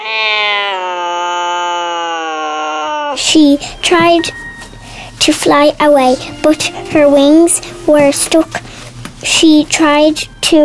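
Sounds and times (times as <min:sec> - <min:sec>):
cat screeching: 0:00.0 - 0:03.2
speech: 0:03.2 - 0:04.4, 0:05.2 - 0:08.6, 0:09.2 - 0:10.6.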